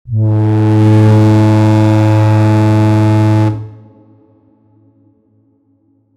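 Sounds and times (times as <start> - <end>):
battle horn echoing far away over a landscape: 0.1 - 4.2.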